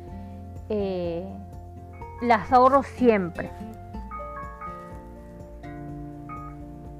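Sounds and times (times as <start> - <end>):
speech: 0.7 - 1.4, 2.2 - 3.7
alarm looping electronic melody: 4.0 - 5.2, 6.3 - 6.8.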